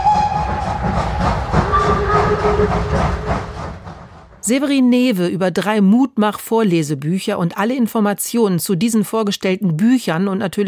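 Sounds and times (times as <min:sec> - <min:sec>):
steam locomotive whistle: 0:00.0 - 0:03.7
steam train chugging and clattering: 0:00.0 - 0:04.5
speech: 0:04.5 - 0:10.6.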